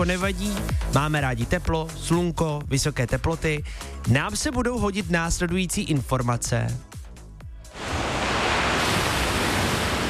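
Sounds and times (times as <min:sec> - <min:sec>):
speech: 0:00.0 - 0:06.9
Adriatic Sea waves splashing: 0:07.7 - 0:10.0.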